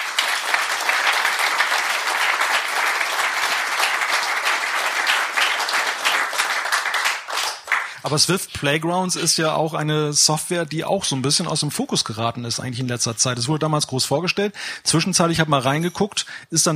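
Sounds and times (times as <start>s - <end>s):
crowd applause: 0.0s - 8.2s
speech: 8.0s - 16.7s.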